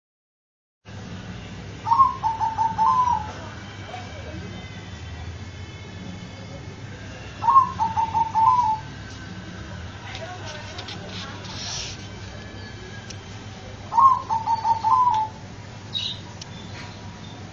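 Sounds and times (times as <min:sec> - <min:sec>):
faint hum: 0:00.9 - 0:17.5
dove cooing: 0:01.8 - 0:03.5, 0:07.4 - 0:08.9, 0:13.9 - 0:16.2.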